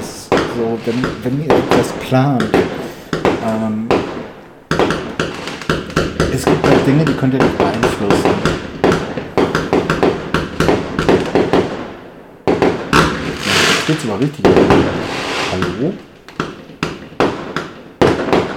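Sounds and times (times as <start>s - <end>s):
fireworks exploding outside: 0.0s - 18.5s
speech: 0.6s - 2.8s, 3.4s - 4.0s, 6.4s - 8.6s, 13.9s - 16.1s.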